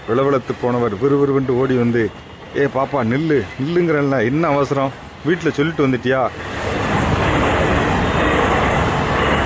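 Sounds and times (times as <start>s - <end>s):
train rushing past: 0.0s - 9.4s
speech: 0.1s - 6.5s.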